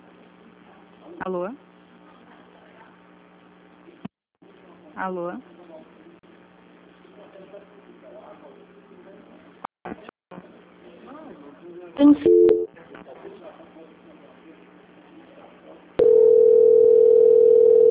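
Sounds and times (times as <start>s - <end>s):
speech: 1.2s - 1.7s, 5.0s - 5.5s, 11.9s - 12.6s
telephone ringing tone on the line: 12.2s - 12.7s, 16.0s - 17.8s.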